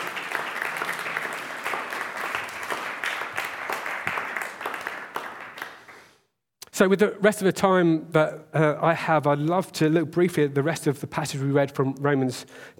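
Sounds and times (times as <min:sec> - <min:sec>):
room full of people applauding: 0:00.0 - 0:06.2
speech: 0:06.8 - 0:12.7.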